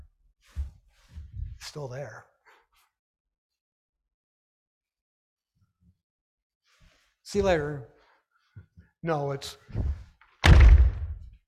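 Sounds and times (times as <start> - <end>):
speech: 1.7 - 2.3, 7.3 - 7.9, 9.0 - 10.0
door slamming: 9.8 - 11.3.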